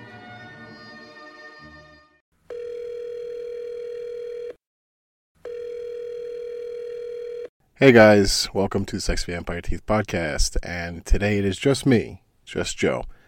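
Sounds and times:
telephone ringback tone: 2.5 - 4.6, 5.4 - 7.5
speech: 7.8 - 13.2.

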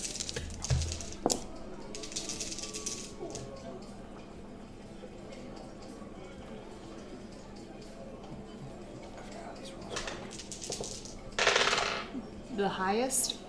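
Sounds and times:
dice rattling and clattering across a hard table: 0.0 - 3.5, 9.9 - 12.1
quiet voices murmuring: 0.0 - 13.4
speech: 12.7 - 13.4.

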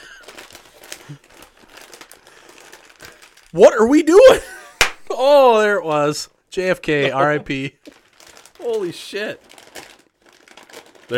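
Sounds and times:
chicken-seasoned snack packet plastic wrapping crinkling while being opened: 0.0 - 3.8, 7.5 - 11.1
speech: 1.1 - 1.3, 3.5 - 4.5, 5.2 - 8.0, 8.6 - 9.5.

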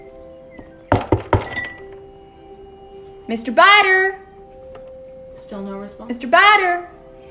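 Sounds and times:
firm knocking on a door: 0.6 - 1.9
speech: 3.3 - 4.2, 5.5 - 7.2.

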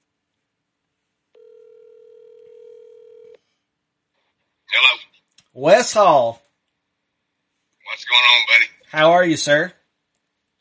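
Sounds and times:
telephone line tone as a phone call is placed: 1.4 - 3.4
speech: 5.6 - 6.4, 8.9 - 9.8.

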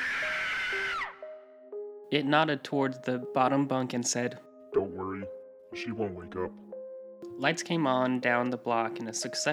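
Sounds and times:
woman's ear-piercing scream: 0.0 - 1.2
speech: 2.1 - 6.6, 7.4 - 9.5.

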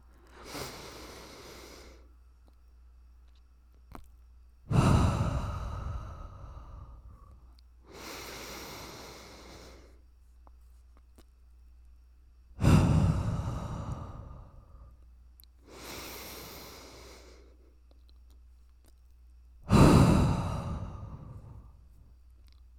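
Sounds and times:
deep breaths in and out close to the microphone: 4.7 - 10.0, 12.6 - 15.0, 15.7 - 17.6, 19.7 - 22.1.

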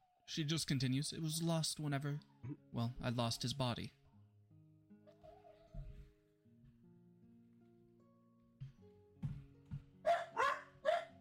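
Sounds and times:
speech: 0.3 - 4.0
dogs barking in a home: 10.0 - 11.2.

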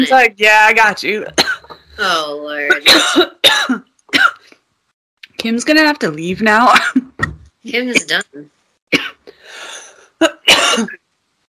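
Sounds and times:
speech: 0.0 - 3.6, 5.4 - 11.0
person coughing hard after a bong hit with raspy wheezing inhale: 1.4 - 1.8, 2.7 - 4.5, 6.7 - 7.1, 8.9 - 9.2, 10.0 - 11.0.

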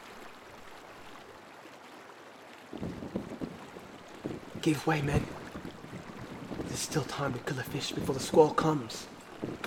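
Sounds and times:
wind rushing over open water: 2.4 - 9.6
rolling ocean swells: 2.6 - 9.6
speech: 2.8 - 3.3, 4.6 - 5.4, 6.8 - 9.5.

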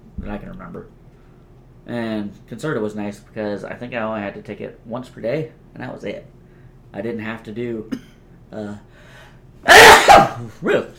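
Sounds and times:
speech: 0.3 - 1.0, 1.8 - 10.9
person sneezing from allergies: 9.7 - 10.5.

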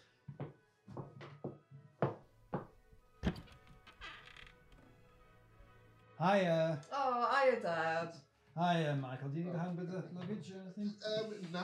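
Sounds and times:
front door swinging open: 3.2 - 4.9
speech: 6.2 - 11.6.

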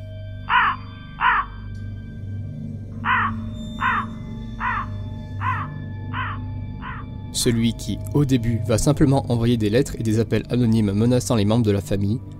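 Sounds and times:
crow cawing: 0.5 - 1.7, 3.0 - 7.2
speech: 7.4 - 12.3.

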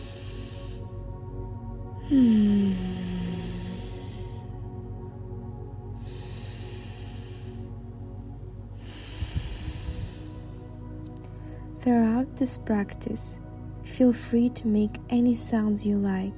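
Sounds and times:
slow deep breathing through the nose during yoga practice: 0.0 - 1.2, 1.9 - 11.8
low steady hum: 0.0 - 16.3
speech: 2.1 - 2.8, 11.9 - 16.3.

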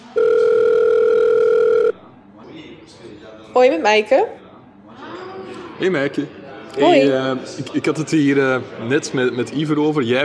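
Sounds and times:
telephone ringback tone of an outgoing call: 0.0 - 2.0
speech: 3.6 - 4.4, 5.8 - 10.2.

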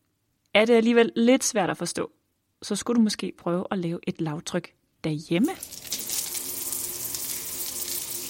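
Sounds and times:
speech: 0.6 - 5.9
hot water pouring from a shower tap: 5.5 - 8.2.

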